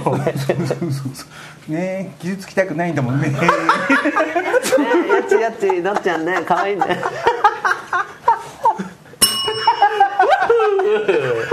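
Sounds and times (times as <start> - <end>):
laughter in a room: 0.0 - 0.9, 3.4 - 11.5
speech: 0.0 - 7.4, 10.9 - 11.4
bath water heater electronic notification chime melody: 9.2 - 10.2.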